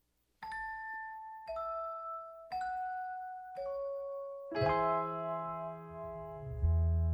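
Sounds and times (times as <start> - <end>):
ringing piano notes of a Christmas song recording: 1.5 - 7.1
full chord with deep bass in a Christmas song recording: 4.6 - 7.1.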